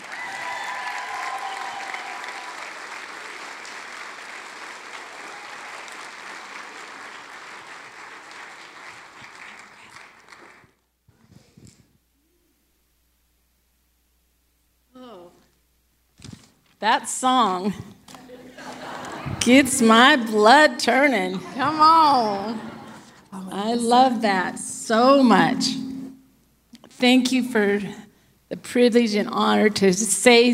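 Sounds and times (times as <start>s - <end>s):
large audience applauding: 0.0s - 10.8s
speech: 16.8s - 17.9s, 19.4s - 22.7s, 23.6s - 25.8s, 27.0s - 28.0s, 28.7s - 30.5s
laughter: 18.2s - 19.8s, 21.3s - 23.2s.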